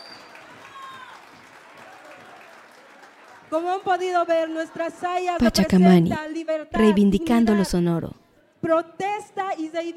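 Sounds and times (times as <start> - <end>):
faint whistles: 0.0 - 0.4
audience applause: 0.0 - 5.0
speech: 3.5 - 9.9.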